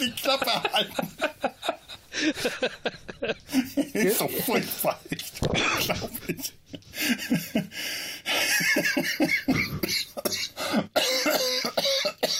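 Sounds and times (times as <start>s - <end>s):
speech: 0.0s - 1.2s, 4.3s - 6.5s
laughter: 0.0s - 10.0s
person coughing from cigarette smoke: 9.3s - 12.3s.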